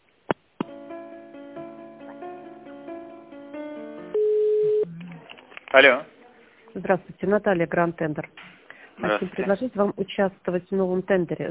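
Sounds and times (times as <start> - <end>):
telephone line tones while a call is transferred: 3.9 - 4.9
speech: 5.7 - 6.1, 6.8 - 11.4.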